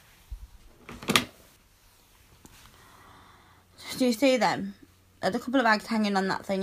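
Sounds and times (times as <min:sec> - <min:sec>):
closet door opening: 0:00.8 - 0:01.4
speech: 0:04.0 - 0:06.6.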